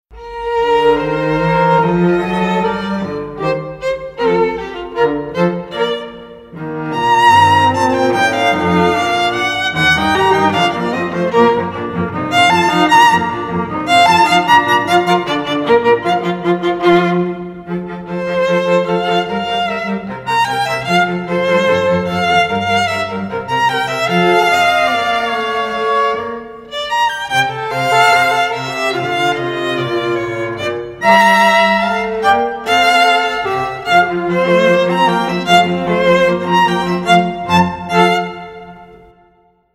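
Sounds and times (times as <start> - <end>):
divertimento for violin viola and cello: 0.1 - 39.2.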